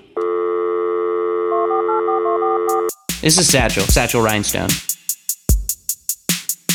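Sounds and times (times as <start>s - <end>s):
telephone dial tone: 0.2s - 2.9s
speech: 2.0s - 4.9s.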